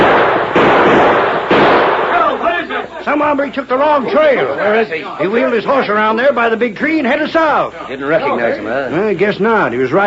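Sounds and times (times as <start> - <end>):
gunshots on a frontier trail: 0.0 - 2.8
speech: 3.1 - 10.0.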